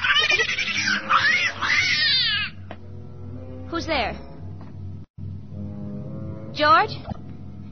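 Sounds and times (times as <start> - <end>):
cat yowling: 0.0 - 2.6
speech: 3.9 - 4.3, 6.6 - 7.2.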